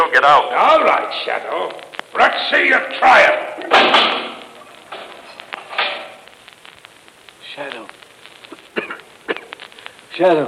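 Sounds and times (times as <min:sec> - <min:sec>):
speech: 0:00.2 - 0:04.3, 0:10.2 - 0:10.4
heavy steel door slamming shut with a booming slam: 0:03.7 - 0:04.4.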